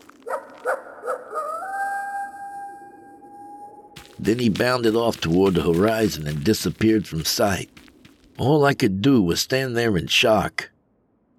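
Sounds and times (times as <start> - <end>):
coyote yipping and howling: 0.3 - 4.1
speech: 4.2 - 7.8, 8.4 - 10.7.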